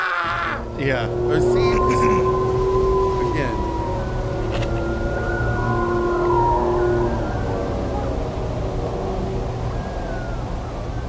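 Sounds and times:
man yelling outdoors imitating a coyote howl: 0.0 - 2.3
low outdoor rumble: 0.1 - 11.0
speech: 0.8 - 2.1.

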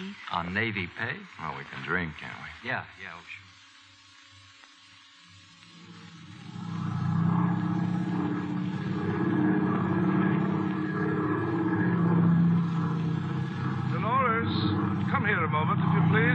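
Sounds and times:
speech: 0.3 - 3.4
propeller plane engine roaring during takeoff: 6.3 - 16.3.

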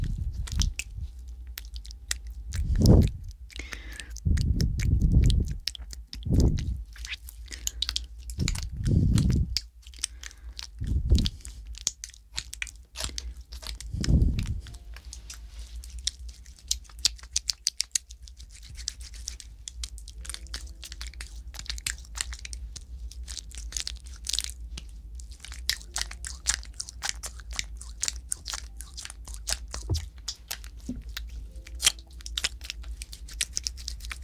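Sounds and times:
soft low thumps: 0.0 - 1.2, 2.4 - 3.4, 4.2 - 6.8, 8.4 - 9.6, 10.8 - 11.4, 13.9 - 15.0, 29.8 - 30.2, 30.8 - 31.2
wet mouth sounds with aloe gel: 0.0 - 34.2.

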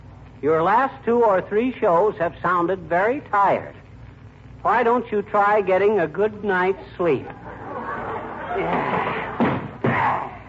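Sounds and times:
speech: 0.4 - 3.8, 4.6 - 7.7, 8.6 - 9.0
laughter: 6.8 - 10.3
kicking a cedar wood chair: 8.7 - 10.3.

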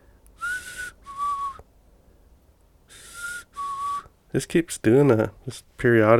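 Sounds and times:
person whistling breathy notes imitating a recorded whistle: 0.4 - 1.6, 2.9 - 4.1
speech: 4.3 - 6.1.

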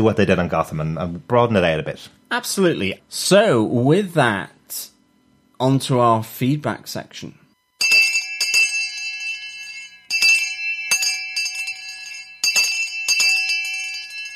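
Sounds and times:
speech: 0.0 - 4.9, 5.6 - 8.0
town crier's handbell ringing: 7.8 - 14.3.

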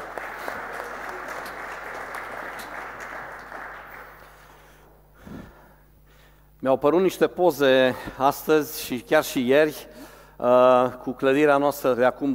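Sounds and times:
church audience applauding: 0.0 - 4.8
speech: 6.6 - 12.3.

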